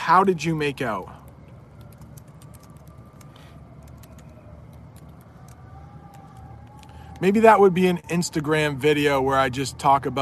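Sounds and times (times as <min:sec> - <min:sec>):
distant fire truck sirens wailing: 0:00.0 - 0:10.2
steady rumble of traffic: 0:00.0 - 0:10.2
speech: 0:00.1 - 0:01.2, 0:07.2 - 0:10.2.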